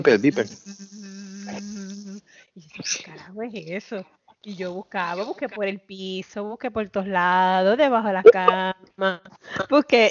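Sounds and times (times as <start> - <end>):
speech: 0.0 - 0.8, 2.6 - 10.0
voice humming a low buzzing drone imitating a vibrator: 0.0 - 2.2.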